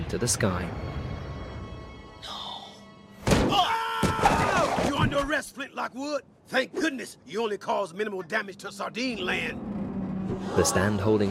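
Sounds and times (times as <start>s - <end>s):
speech: 0.1s - 1.0s, 5.0s - 11.3s
body slamming into a metal lamppost: 3.2s - 5.2s.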